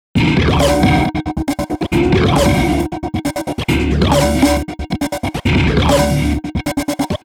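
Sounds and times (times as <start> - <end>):
disco music: 0.2 - 7.3.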